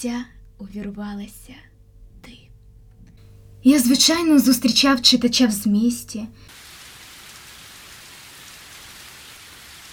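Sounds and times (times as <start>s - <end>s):
speech: 0.0s - 2.4s, 3.6s - 6.6s
heavy rain drumming on surfaces on a cold morning: 6.5s - 9.9s.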